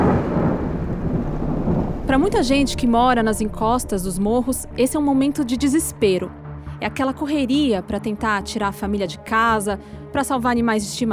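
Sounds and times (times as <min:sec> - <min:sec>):
loud thunder rumbling in a storm: 0:00.0 - 0:05.9
speech: 0:02.1 - 0:11.1.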